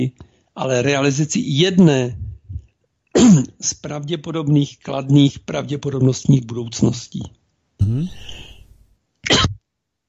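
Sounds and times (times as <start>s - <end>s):
speech: 0.0s - 2.2s, 3.2s - 8.5s
person coughing in a short fit: 3.2s - 3.5s, 7.8s - 9.6s.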